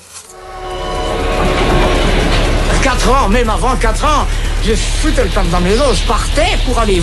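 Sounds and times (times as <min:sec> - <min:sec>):
train passing on rails: 0:00.3 - 0:07.0
speech: 0:03.1 - 0:07.0.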